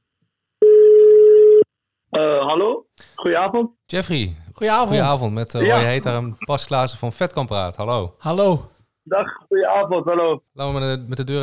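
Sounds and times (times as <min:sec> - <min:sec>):
telephone ringing tone as a call is placed: 0:00.6 - 0:01.7
speech: 0:02.2 - 0:11.4.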